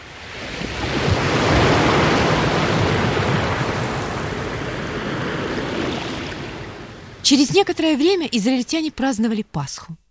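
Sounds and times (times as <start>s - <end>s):
loud continuous roar of rushing water surging back: 0.0s - 7.8s
speech: 7.3s - 10.0s.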